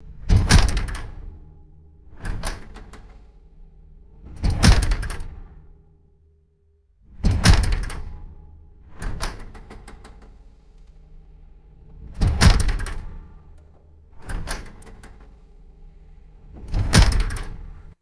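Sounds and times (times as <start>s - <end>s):
metal screen door bumping shut and rattling: 0.0s - 5.7s, 7.2s - 17.9s.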